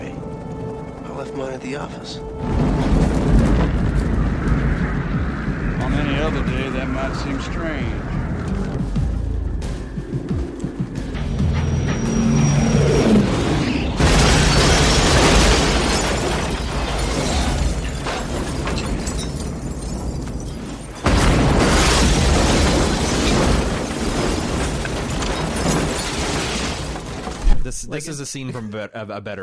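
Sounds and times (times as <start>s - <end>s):
sustained rumbling and debris from a car wreck: 0.0s - 28.1s
speech: 1.2s - 3.0s, 6.0s - 8.2s, 27.9s - 29.4s
car violently wrecked in a movie action sequence: 11.6s - 27.6s.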